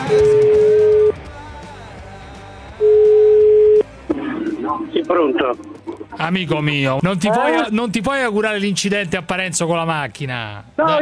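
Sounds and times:
telephone dialing tone of an outgoing call: 0.1s - 1.2s, 2.8s - 3.9s
speech: 5.0s - 10.9s.

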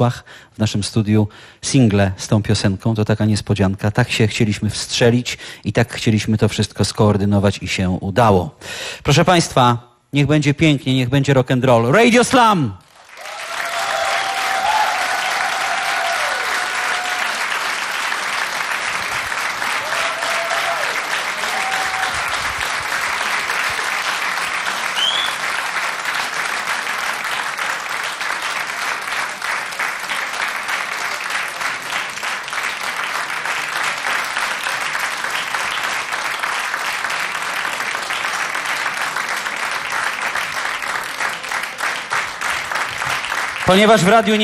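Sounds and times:
speech: 0.0s - 12.8s, 43.7s - 44.4s
audience applause in a radio studio: 12.8s - 44.4s.

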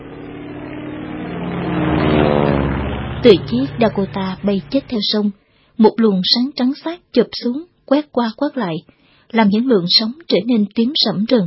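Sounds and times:
American patrol boat engine droning on a river: 0.0s - 5.2s
speech: 3.2s - 11.4s.

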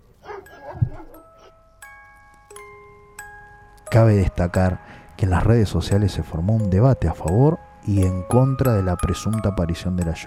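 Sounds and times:
neighbourhood dogs barking: 0.2s - 1.2s
steady ringing tones: 0.5s - 10.2s
speech: 3.9s - 10.2s.

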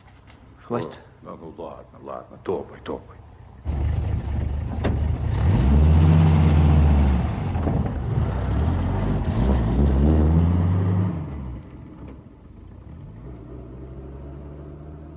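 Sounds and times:
speech: 0.7s - 3.3s
truck engine rumbling and revving as it drives off on a road by a lake: 3.6s - 15.1s.

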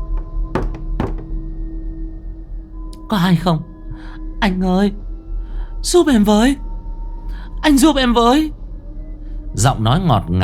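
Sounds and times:
dull hollow knocking on a door at night: 0.0s - 1.5s
speech: 3.1s - 5.1s, 5.8s - 6.6s, 7.6s - 8.6s, 9.6s - 10.4s.

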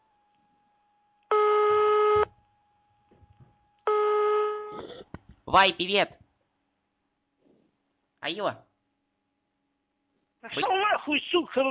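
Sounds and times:
long-distance telephone call ringback tones: 1.3s - 2.3s, 3.9s - 4.8s
speech: 5.5s - 6.2s, 8.3s - 8.7s, 10.5s - 11.6s.

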